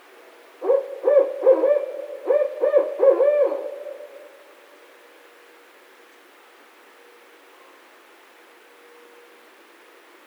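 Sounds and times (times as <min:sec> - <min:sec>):
barred owl hooting: 0:00.6 - 0:04.4.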